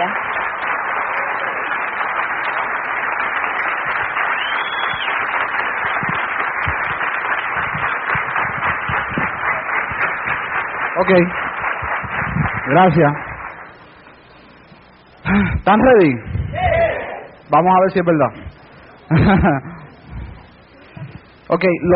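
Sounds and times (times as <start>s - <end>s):
large crowd applauding: 0.0s - 17.4s, 18.1s - 21.9s
speech: 11.0s - 11.4s, 12.7s - 13.3s, 15.6s - 16.3s, 17.5s - 18.4s, 19.1s - 19.7s, 21.5s - 21.9s
laughter: 18.9s - 21.2s.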